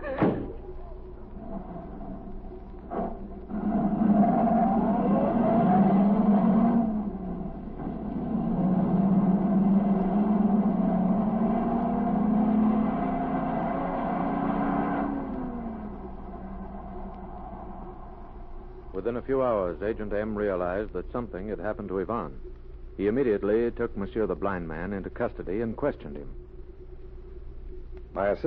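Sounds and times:
car engine starting and driving away: 0.0s - 19.2s
speech: 19.1s - 26.4s, 28.1s - 28.4s.

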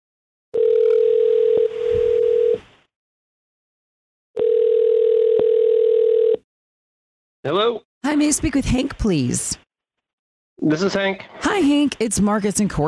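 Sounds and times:
outgoing phone call ringing tone placed from a radio show in the Bay Area: 0.6s - 2.6s, 4.4s - 6.4s
speech: 7.4s - 9.6s, 10.6s - 12.8s.

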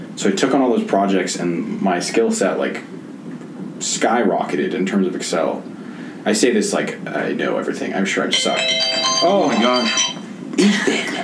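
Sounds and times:
speech: 0.2s - 3.0s, 3.8s - 11.2s
electronic alarm with high beeping tones: 8.3s - 10.2s.

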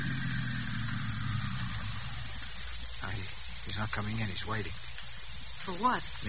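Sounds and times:
car engine idling outside: 0.0s - 4.8s
speech: 3.0s - 4.9s, 5.6s - 6.2s.

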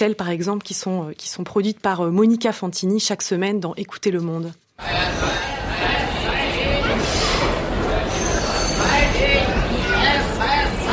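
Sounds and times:
speech: 0.0s - 6.2s
crowd chatter at a central railway station: 4.8s - 10.9s
low rumbling train and rail noise: 4.8s - 10.9s
brighter metallic squeals: 6.8s - 9.5s.

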